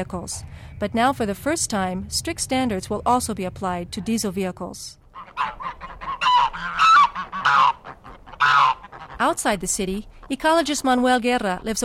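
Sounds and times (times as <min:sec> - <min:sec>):
speech: 0:00.0 - 0:05.6, 0:09.2 - 0:11.8
flock of geese honking: 0:05.1 - 0:09.5.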